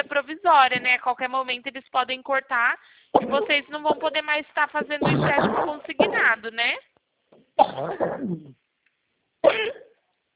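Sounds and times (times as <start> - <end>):
speech: 0.3 - 8.6, 9.4 - 9.8
woman coughing: 3.2 - 6.4, 7.6 - 8.6, 9.4 - 10.0.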